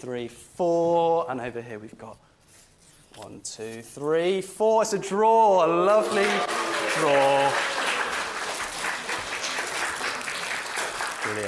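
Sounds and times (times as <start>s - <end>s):
speech: 0.0s - 2.3s, 3.2s - 7.8s
audience applause: 5.7s - 11.4s.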